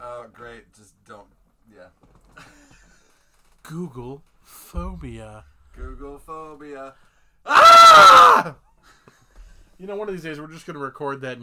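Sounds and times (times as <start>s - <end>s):
speech: 0.3s - 3.0s, 3.7s - 9.0s, 9.8s - 11.4s
single loud sustained harsh human scream: 7.5s - 8.5s.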